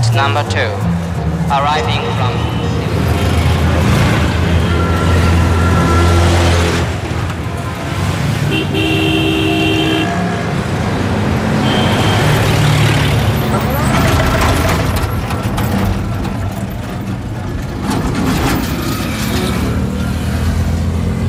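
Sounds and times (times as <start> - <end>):
cars and buses idling and rumbling in a traffic jam in Delhi: 0.0 - 21.2
speech: 0.2 - 0.9, 1.5 - 2.8, 8.5 - 9.0
car horn toots from several vehicles: 4.0 - 7.0, 8.4 - 10.5, 11.6 - 12.7.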